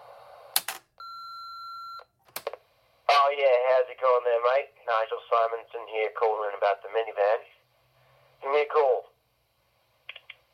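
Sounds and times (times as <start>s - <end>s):
electronic answering machine beep: 1.0s - 2.1s
speech: 3.4s - 7.6s, 8.4s - 9.0s.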